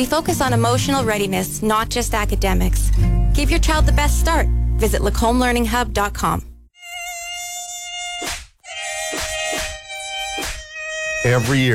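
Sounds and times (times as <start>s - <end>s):
speech: 0.0s - 6.5s, 11.2s - 11.7s
loud mosquito whine: 6.8s - 11.3s.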